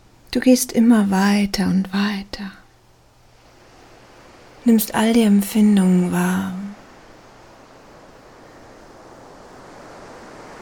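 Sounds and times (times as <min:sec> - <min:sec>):
speech: 0:00.4 - 0:02.6, 0:04.6 - 0:06.7
ocean waves breaking on a beach: 0:03.2 - 0:10.6.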